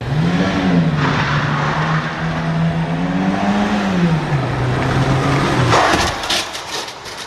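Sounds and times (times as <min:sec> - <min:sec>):
small city car engine drone at 50 km/h: 0:00.0 - 0:07.2
small city car crash impact at 50 km/h: 0:05.7 - 0:07.2.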